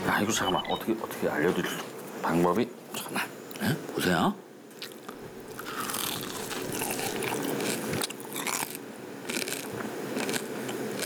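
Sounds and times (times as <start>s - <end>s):
speech: 0.2s - 4.4s
biting and chewing crispy nurungji scorched rice under a potato pancake: 4.9s - 11.0s.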